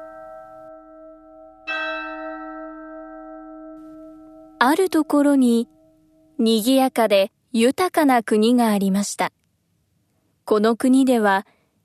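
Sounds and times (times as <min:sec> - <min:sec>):
deep church bell ringing: 0:00.0 - 0:06.8
speech: 0:04.6 - 0:05.8, 0:06.4 - 0:09.4, 0:10.5 - 0:11.6.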